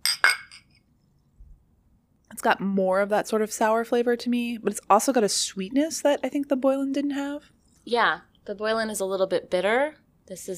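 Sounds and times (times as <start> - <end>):
glasses of sparkling spring water clinking in a toast: 0.0 - 0.8
speech: 2.3 - 10.5.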